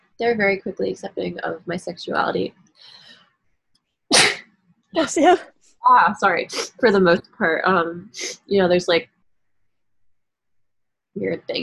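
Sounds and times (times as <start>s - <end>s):
speech: 0.2s - 3.0s, 4.9s - 9.1s, 11.2s - 11.6s
person sneezing: 4.1s - 4.4s.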